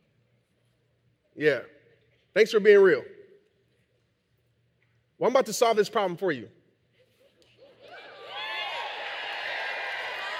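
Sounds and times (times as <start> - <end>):
speech: 1.4 - 3.1, 5.2 - 6.6
audience cheering and whooping: 7.8 - 10.3.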